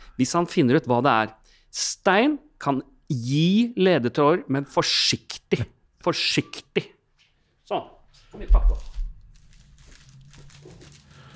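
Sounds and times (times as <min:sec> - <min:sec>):
speech: 0:00.2 - 0:07.0, 0:07.7 - 0:08.9
wrapping paper crinkling and tearing off a package holding a lithograph: 0:08.6 - 0:11.3.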